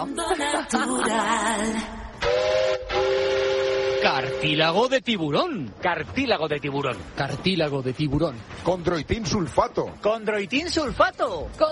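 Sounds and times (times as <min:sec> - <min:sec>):
speech: 0:00.0 - 0:02.0, 0:04.4 - 0:11.7
steam-style train whistle: 0:02.2 - 0:04.8.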